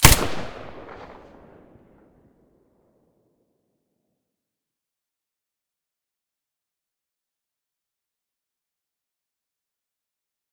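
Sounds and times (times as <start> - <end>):
silenced weapon gunshot: 0.0 - 1.6.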